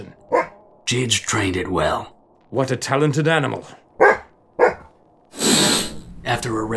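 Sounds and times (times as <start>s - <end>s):
speech: 0.0s - 3.8s, 6.3s - 6.7s
coyote barking: 0.2s - 0.6s, 3.9s - 5.0s
rush of hissing noise: 5.4s - 6.3s.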